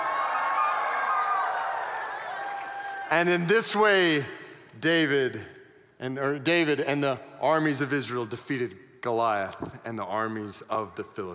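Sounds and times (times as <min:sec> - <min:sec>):
large group of voices shouting and whooping while running in place: 0:00.0 - 0:03.2
speech: 0:03.1 - 0:11.3.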